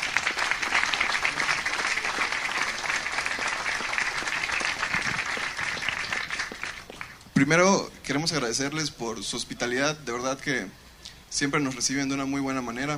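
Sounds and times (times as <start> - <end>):
applause from a large audience: 0.0 - 7.2
speech: 7.4 - 12.9.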